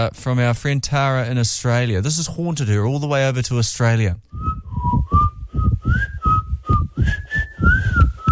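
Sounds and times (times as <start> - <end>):
speech: 0.0 - 4.6
person whistling a tune: 4.4 - 8.3
pulsing low thumping beat: 4.4 - 8.3.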